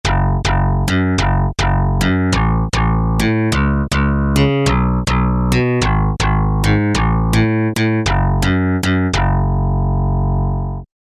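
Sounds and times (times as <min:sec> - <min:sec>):
FM synth sustained bass: 0:00.0 - 0:10.9.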